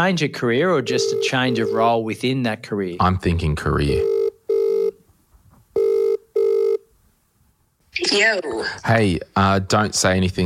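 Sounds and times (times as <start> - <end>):
speech: 0.0 - 4.2, 8.0 - 10.4
ringback tone of an outgoing phone call: 0.9 - 1.8, 4.0 - 5.0, 5.8 - 6.8.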